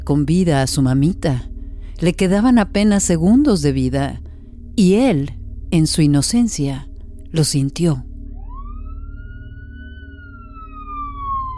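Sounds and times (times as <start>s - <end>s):
speech: 0.0s - 4.2s, 4.8s - 8.1s
police patrol car siren wailing: 8.3s - 11.5s.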